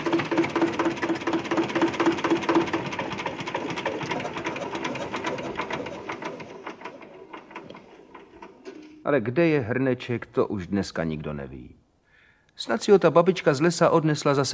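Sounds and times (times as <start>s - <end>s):
tractor engine chugging steadily: 0.0s - 8.6s
speech: 9.1s - 11.8s, 12.6s - 14.5s.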